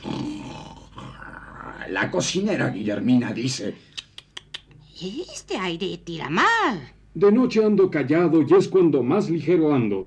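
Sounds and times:
deep rough bear growl: 0.0s - 2.1s
speech: 1.9s - 3.9s, 5.0s - 10.0s.

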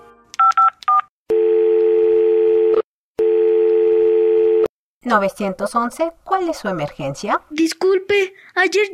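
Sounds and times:
telephone ringing tones: 1.3s - 4.7s
speech: 5.1s - 8.9s.

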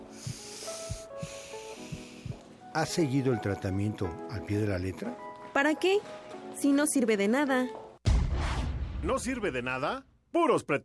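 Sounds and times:
deep breath during a doctor's examination: 0.1s - 2.4s
speech: 2.8s - 7.8s, 9.0s - 10.8s.

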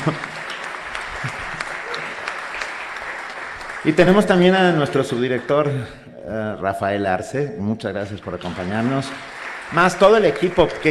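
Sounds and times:
speech: 0.0s - 0.3s, 1.2s - 1.4s, 3.8s - 10.8s
audience applause: 0.0s - 5.9s, 8.3s - 10.8s.

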